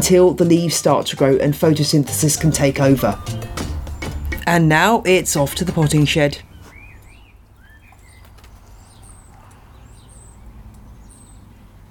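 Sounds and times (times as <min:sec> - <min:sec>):
speech: 0:00.0 - 0:03.7, 0:04.5 - 0:06.5
several birds singing and chirping outdoors: 0:02.5 - 0:11.9.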